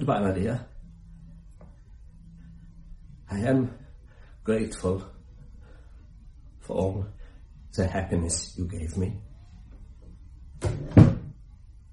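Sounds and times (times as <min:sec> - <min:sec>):
speech: 0:00.0 - 0:00.7, 0:03.3 - 0:03.8, 0:04.4 - 0:05.2, 0:06.7 - 0:09.3, 0:10.6 - 0:11.1
door settling into its frame with a low thud: 0:10.6 - 0:11.3.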